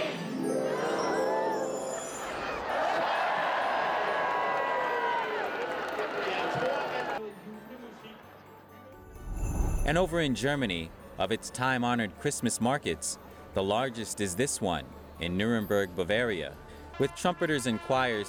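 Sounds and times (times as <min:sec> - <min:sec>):
large crowd cheering and yelling excitedly: 0:00.2 - 0:07.2
speech: 0:09.9 - 0:18.2.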